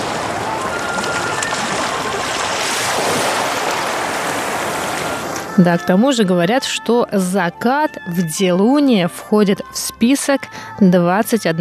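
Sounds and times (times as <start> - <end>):
ocean waves breaking on wave-eroded rocks of the Dilun seacoast in Taiwan: 0.0 - 5.5
speech: 5.6 - 11.5.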